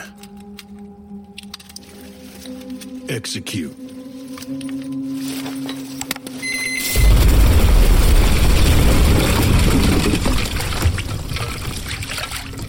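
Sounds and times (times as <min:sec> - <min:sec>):
speech: 0:03.1 - 0:03.8, 0:04.5 - 0:04.8
breaching charges exploding in concrete room: 0:06.9 - 0:12.6.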